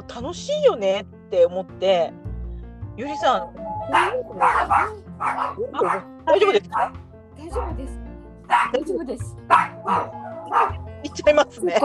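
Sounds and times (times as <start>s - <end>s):
speech: 0.1s - 2.2s, 3.0s - 11.8s
dog barking with yelping pitch: 3.2s - 6.9s, 7.5s - 7.8s, 8.5s - 8.9s, 9.5s - 11.3s.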